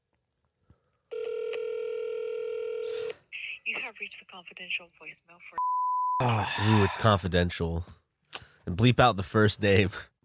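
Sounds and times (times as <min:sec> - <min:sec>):
telephone ringback tone on an outgoing call: 0:01.1 - 0:03.1
speech: 0:03.7 - 0:08.0, 0:08.7 - 0:10.2.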